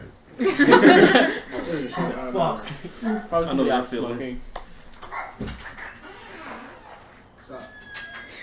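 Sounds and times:
laughter: 0.4 - 4.0
speech: 0.4 - 4.6
dog barking in short sharp bursts: 5.0 - 6.0
dog whiny yips: 5.0 - 8.4.

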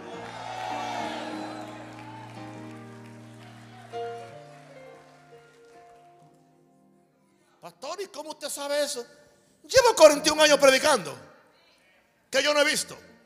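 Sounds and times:
audience cheering and shouting: 0.0 - 5.6
sustained organ chords: 0.0 - 6.6
speech: 7.7 - 11.3, 12.3 - 13.1.

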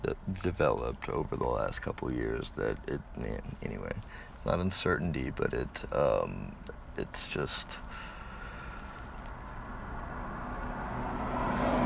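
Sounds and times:
speech: 0.0 - 8.1
truck driving by: 9.7 - 11.8.

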